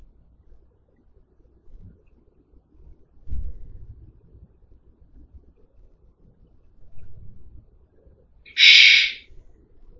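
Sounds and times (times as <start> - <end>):
static noise: 8.5 - 9.2.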